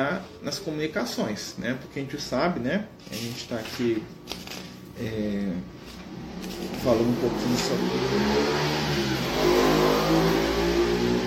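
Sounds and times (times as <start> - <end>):
speech: 0.0 - 5.8, 6.4 - 8.8
motorcycle engine accelerating past outside: 6.0 - 11.2.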